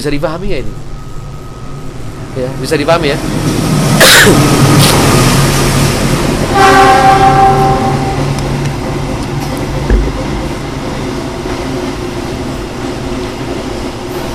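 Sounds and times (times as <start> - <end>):
speech: 0.0 - 0.9, 2.4 - 5.1, 6.6 - 7.6
freight train rumbling past: 0.0 - 14.3
long loud train horn blast: 6.4 - 8.4.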